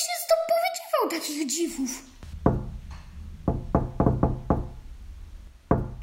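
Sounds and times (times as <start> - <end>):
speech: 1.0 - 2.2
firm knocks on a wooden door: 2.2 - 5.0, 5.6 - 6.0.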